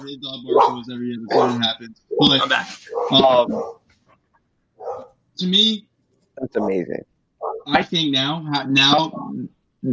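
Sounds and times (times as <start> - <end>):
speech: 0.0 - 3.8, 4.8 - 9.9
dog barking and whining: 0.5 - 3.8, 4.8 - 5.2, 7.4 - 7.7.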